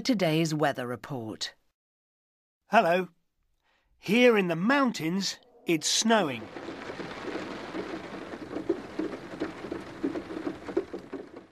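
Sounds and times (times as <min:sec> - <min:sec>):
speech: 0:00.0 - 0:01.6, 0:02.7 - 0:03.2, 0:04.0 - 0:06.8
steady rain falling: 0:05.3 - 0:11.5.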